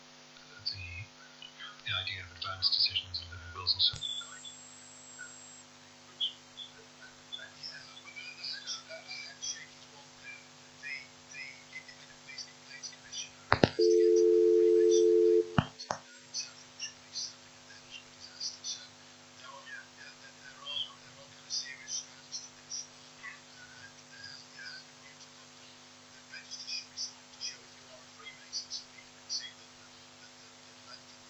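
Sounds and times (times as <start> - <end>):
remote recording switch-on signal: 13.6 - 15.7.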